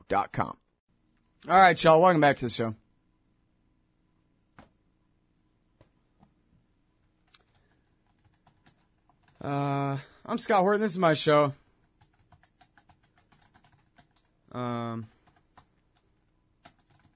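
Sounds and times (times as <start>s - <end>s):
speech: 0.1s - 0.6s, 1.4s - 2.8s, 9.4s - 11.6s, 14.5s - 15.1s
typing on a computer keyboard: 7.2s - 9.4s, 11.9s - 14.4s, 15.1s - 17.1s.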